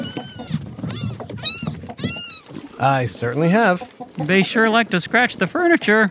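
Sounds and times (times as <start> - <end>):
kitten meowing: 0.0 - 2.6
speech: 2.8 - 6.0.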